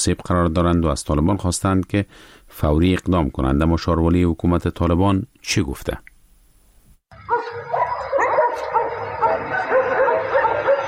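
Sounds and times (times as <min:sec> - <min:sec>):
speech: 0:00.0 - 0:06.1
faint noise: 0:00.0 - 0:10.8
several stray dogs barking and yipping outdoors in the street: 0:07.2 - 0:10.8.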